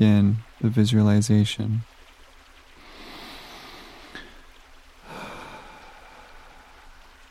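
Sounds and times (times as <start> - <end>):
speech: 0.0 - 1.9
deep slow cleansing breaths during a guided relaxation exercise: 2.7 - 7.2.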